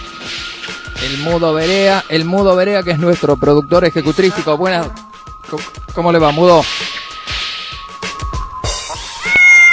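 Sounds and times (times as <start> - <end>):
speech: 1.0 - 6.9
cat meowing: 9.0 - 9.7.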